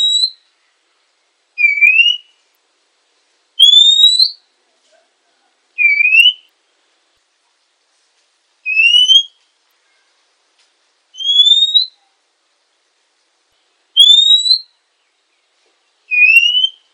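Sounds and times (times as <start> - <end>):
female oriental magpie-robin rising whistled notes: 0.0 - 0.5, 1.6 - 2.4, 3.6 - 4.4, 5.8 - 6.5, 8.6 - 10.1, 11.2 - 12.1, 14.0 - 14.8, 16.1 - 16.9.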